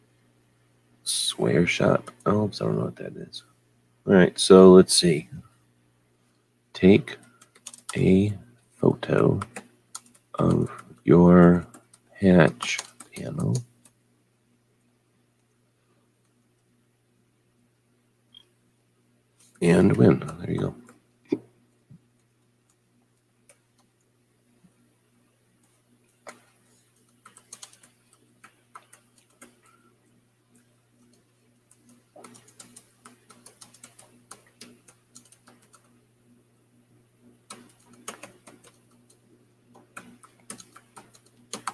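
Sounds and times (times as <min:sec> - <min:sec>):
steady low electrical hum: 0:00.0 - 0:41.7
speech: 0:01.1 - 0:05.5, 0:06.8 - 0:07.2, 0:07.9 - 0:09.6, 0:10.4 - 0:13.7, 0:19.6 - 0:21.4
typing on a computer keyboard: 0:07.2 - 0:08.0, 0:09.3 - 0:11.0, 0:11.7 - 0:14.0, 0:26.3 - 0:29.7, 0:31.0 - 0:35.9, 0:37.5 - 0:41.7.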